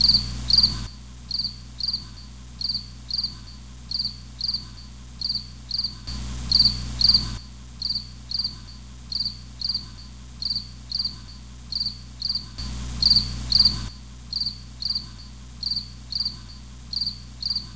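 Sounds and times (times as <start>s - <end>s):
cricket chirping: 0.0s - 17.7s
low constant hum: 0.0s - 17.7s
louder rough noise burst: 6.0s - 7.5s, 12.5s - 14.0s.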